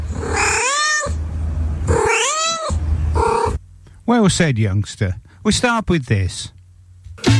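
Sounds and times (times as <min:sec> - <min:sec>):
cat meowing: 0:00.1 - 0:01.2, 0:01.9 - 0:03.6
low steady hum: 0:01.1 - 0:07.2
speech: 0:04.2 - 0:06.6.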